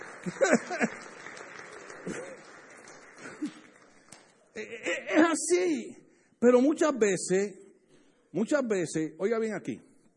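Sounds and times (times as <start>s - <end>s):
crowd applause: 0.0s - 4.4s
laughter: 0.1s - 2.5s
speech: 0.2s - 1.0s, 5.4s - 7.6s, 8.3s - 9.9s.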